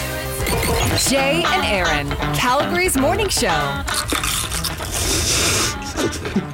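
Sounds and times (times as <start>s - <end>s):
speech: 1.0s - 4.4s, 6.0s - 6.5s
people chewing Pringles Mexican street corn chips: 3.8s - 6.5s.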